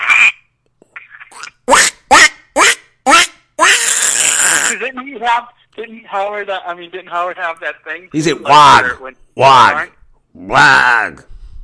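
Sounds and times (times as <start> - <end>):
human voice imitating a cartoon duck: 0.0 - 0.4, 1.0 - 4.8
speech: 4.9 - 11.3.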